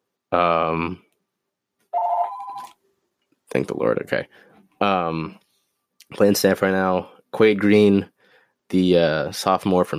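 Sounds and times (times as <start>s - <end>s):
speech: 0.3s - 1.0s, 3.5s - 5.4s, 6.1s - 8.1s, 8.7s - 9.9s
telephone ringing with a buzzy electronic tone: 1.9s - 2.7s.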